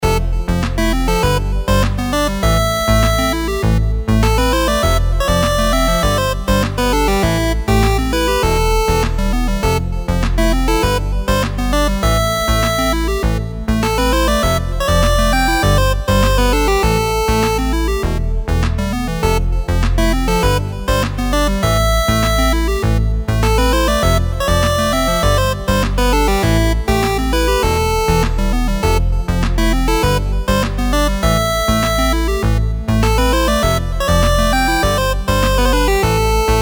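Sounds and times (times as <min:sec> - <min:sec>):
menu music loop: 0:00.0 - 0:36.5.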